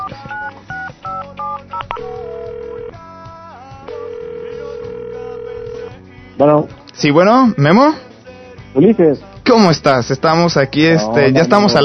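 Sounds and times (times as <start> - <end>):
touch-tone keypad beeps dialing a number: 0.0 - 2.1
speech: 6.4 - 8.1, 8.7 - 11.8.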